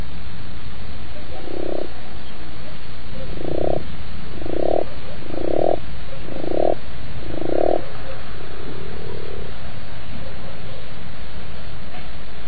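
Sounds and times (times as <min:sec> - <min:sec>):
constant background hiss: 0:00.0 - 0:12.4
frog croaking gravelly: 0:01.2 - 0:11.0.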